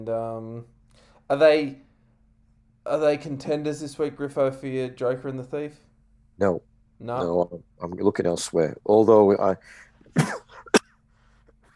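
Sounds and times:
speech: 0:00.0 - 0:01.9, 0:02.8 - 0:10.4
person coughing: 0:10.1 - 0:11.0.

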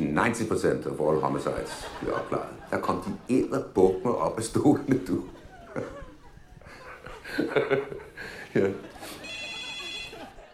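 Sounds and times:
speech: 0:00.2 - 0:06.0, 0:07.3 - 0:09.2
people talking and chuckling: 0:00.9 - 0:10.5
telephone ringing with an electronic trill: 0:09.2 - 0:10.4.

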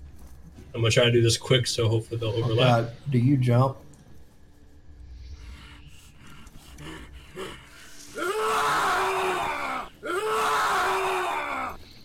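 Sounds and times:
speech: 0:00.7 - 0:03.8
person yelling in rage: 0:08.2 - 0:11.8.

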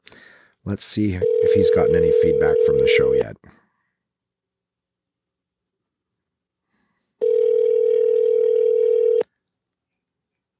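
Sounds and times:
speech: 0:00.6 - 0:03.6
ringback tone on an outgoing phone call: 0:01.2 - 0:03.2, 0:07.2 - 0:09.2.

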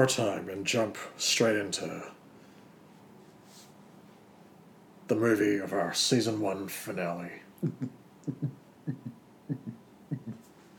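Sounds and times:
speech: 0:00.0 - 0:02.2, 0:05.1 - 0:09.0
beatboxing low paired thumps imitating a baby's heartbeat: 0:07.6 - 0:10.4.

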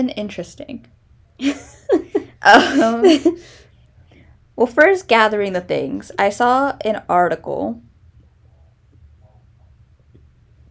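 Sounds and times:
speech: 0:00.0 - 0:01.8, 0:02.4 - 0:03.6, 0:04.6 - 0:07.8
person burping: 0:02.4 - 0:03.2.

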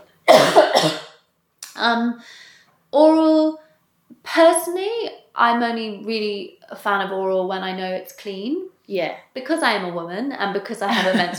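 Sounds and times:
person coughing in harsh bursts: 0:00.3 - 0:01.2
speech: 0:01.8 - 0:03.6, 0:04.2 - 0:11.3.

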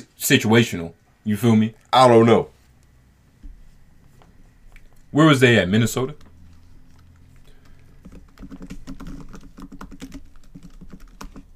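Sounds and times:
speech: 0:00.2 - 0:02.5, 0:05.1 - 0:06.2
typing on a computer keyboard: 0:06.9 - 0:11.5.

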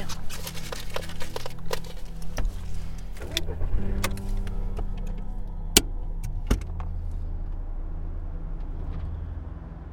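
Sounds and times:
car engine and road hum while driving: 0:00.0 - 0:09.9.

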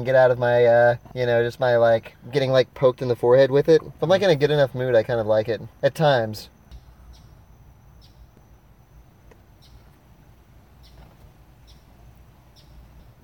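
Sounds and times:
speech: 0:00.0 - 0:06.6
steady low rumble: 0:00.0 - 0:13.2
bird chirping in short high notes: 0:06.4 - 0:13.2.

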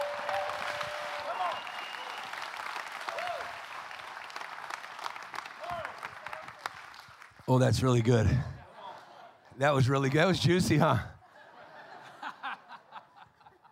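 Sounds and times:
audience whoops and shouts: 0:00.0 - 0:02.3
large audience clapping: 0:00.0 - 0:08.2
speech: 0:07.5 - 0:08.6, 0:09.6 - 0:11.1
laughter: 0:08.2 - 0:09.5, 0:10.4 - 0:13.7.

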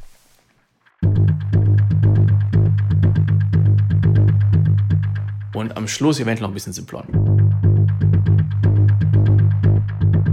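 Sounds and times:
synth sequence processed through echo delay plugins: 0:01.0 - 0:05.6, 0:07.2 - 0:10.3
speech: 0:05.6 - 0:07.4.

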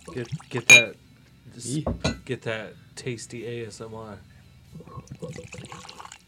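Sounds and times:
liquor pouring into glasses: 0:00.0 - 0:00.9, 0:04.8 - 0:06.2
speech: 0:00.2 - 0:06.0
faint glassy clink: 0:00.6 - 0:01.0, 0:01.9 - 0:02.3.

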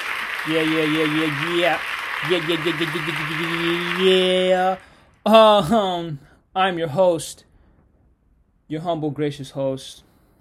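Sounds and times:
steady applause: 0:00.0 - 0:05.1
speech: 0:00.4 - 0:07.5, 0:08.7 - 0:10.0.

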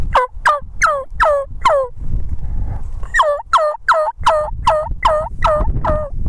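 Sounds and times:
wild turkeys fighting, clucking and purring: 0:00.1 - 0:01.9, 0:03.1 - 0:06.1.

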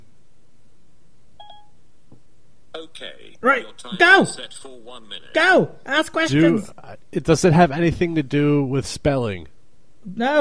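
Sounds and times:
low steady hum: 0:00.0 - 0:10.3
iPhone beeping while setting a one-minute countdown timer: 0:01.4 - 0:01.8
speech: 0:03.0 - 0:10.3.

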